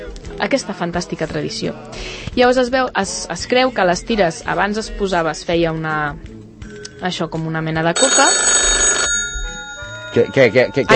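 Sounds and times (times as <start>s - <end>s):
speech: 0.1s - 6.3s, 7.0s - 8.6s, 10.1s - 10.9s
phone ringing with an electronic trill: 8.0s - 10.9s.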